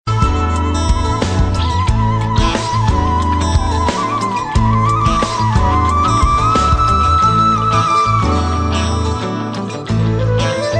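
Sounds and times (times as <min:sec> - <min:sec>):
jazz flute melody ringtone: 0:00.1 - 0:10.7.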